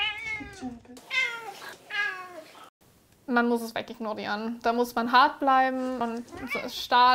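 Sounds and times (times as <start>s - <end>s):
cat meowing for food: 0.0s - 2.5s
speech: 0.6s - 1.1s, 3.3s - 7.1s.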